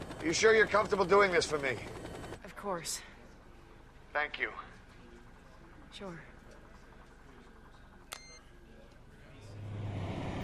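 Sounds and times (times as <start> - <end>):
speech: 0.2 - 2.0, 2.6 - 3.1, 4.2 - 4.7, 5.9 - 6.3
large lorry engine rumbling while turning off the road: 9.3 - 10.4.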